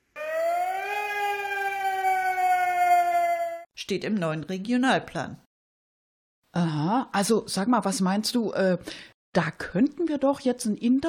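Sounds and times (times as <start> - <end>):
loud red-alert alarm siren wailing: 0.0 - 3.7
speech: 3.8 - 5.5, 6.6 - 11.0.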